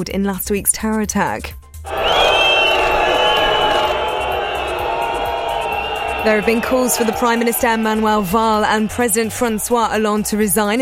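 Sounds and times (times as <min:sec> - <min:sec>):
speech: 0:00.0 - 0:01.6, 0:06.2 - 0:10.7
shrill whistle: 0:01.9 - 0:09.2
large crowd jeering arriving ministers: 0:01.9 - 0:10.1.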